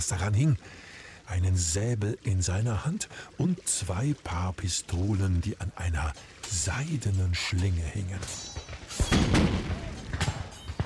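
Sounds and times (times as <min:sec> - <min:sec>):
speech: 0:00.0 - 0:09.8
cannons firing heavy booms: 0:08.4 - 0:10.8.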